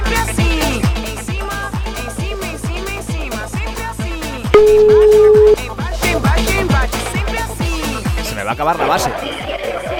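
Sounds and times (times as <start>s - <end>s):
loud driving rhythmic music bed with a thumping beat: 0.0s - 9.9s
steady telephone ringback tone from an outgoing call: 4.6s - 5.7s
speech: 8.5s - 9.5s.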